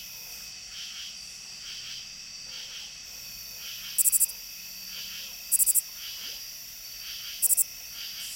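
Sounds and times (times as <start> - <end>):
constant insect drone: 0.0 - 8.3
lesser angle-wing katydid song of sharp high-pitched ticks: 3.8 - 4.3, 5.5 - 5.8, 7.2 - 8.3.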